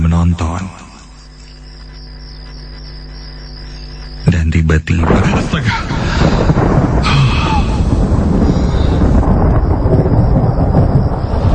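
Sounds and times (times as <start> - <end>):
speech: 0.2 - 0.8, 4.6 - 7.3
thunder crackle: 1.2 - 4.3, 5.0 - 11.5
loud thunderclap during a storm: 5.0 - 11.5.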